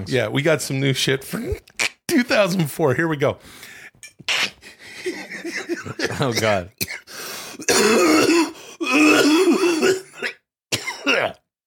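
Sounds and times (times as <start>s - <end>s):
speech: 0.0s - 4.4s, 5.8s - 6.8s, 7.7s - 10.0s
laughter: 4.6s - 6.6s
person coughing in loud rough bursts: 5.6s - 11.4s
person clearing throat harshly: 5.9s - 11.5s.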